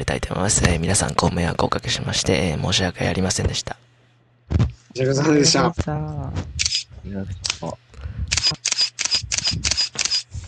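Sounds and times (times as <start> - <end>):
speech: 0.0 - 3.8, 4.5 - 8.7, 9.5 - 9.8
camera shutter clicks in burst mode: 6.6 - 6.8, 8.3 - 10.3.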